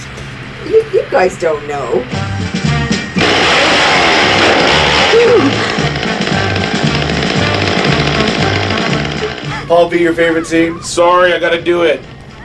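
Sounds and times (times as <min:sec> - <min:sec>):
speech: 0:00.6 - 0:02.6, 0:09.7 - 0:12.1
chainsaw revving: 0:03.1 - 0:10.7
laughter: 0:04.8 - 0:06.0, 0:09.2 - 0:12.4.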